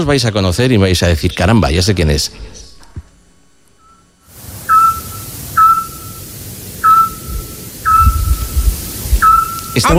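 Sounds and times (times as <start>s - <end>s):
speech: 0.0s - 2.6s, 9.8s - 9.9s
night hiss: 0.0s - 9.9s
Eurasian scops owl calling at night: 3.8s - 6.2s, 6.8s - 9.9s.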